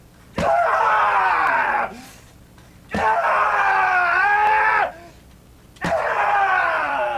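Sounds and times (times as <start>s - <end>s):
patient screaming to release rage: 0.4s - 2.1s, 2.9s - 5.1s, 5.8s - 7.1s.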